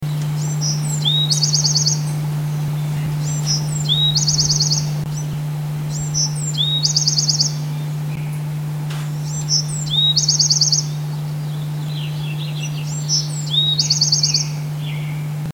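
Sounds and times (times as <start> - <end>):
Bewicks Wren: 0.0 - 15.4.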